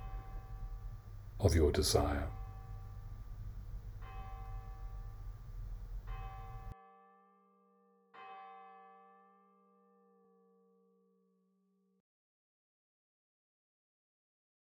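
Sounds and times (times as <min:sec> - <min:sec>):
steady noise: 0:00.0 - 0:06.8
church bell striking: 0:00.0 - 0:07.2
speech: 0:01.4 - 0:02.4.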